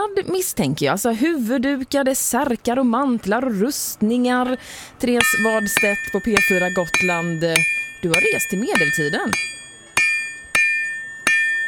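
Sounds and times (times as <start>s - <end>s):
speech: 0.2s - 9.6s
medieval blacksmith hammering metal at a medieval market in Visby Gotland: 5.2s - 11.6s.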